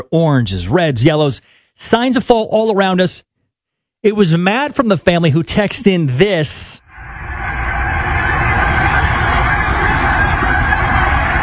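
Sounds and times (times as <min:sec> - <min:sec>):
speech: 0:00.0 - 0:03.3, 0:04.0 - 0:06.8
huge flock of geese honking overhead over a house in autumn: 0:07.3 - 0:11.4.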